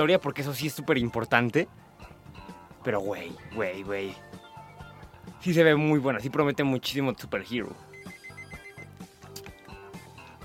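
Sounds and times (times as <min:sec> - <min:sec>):
speech: 0:00.0 - 0:02.1, 0:02.8 - 0:04.3, 0:05.4 - 0:07.9
telephone ringing in short electronic bursts: 0:07.8 - 0:09.1.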